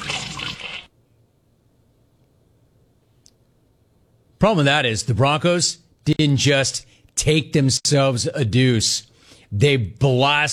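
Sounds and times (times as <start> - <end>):
toilet flushing: 0.0 - 0.9
speech: 4.4 - 10.5.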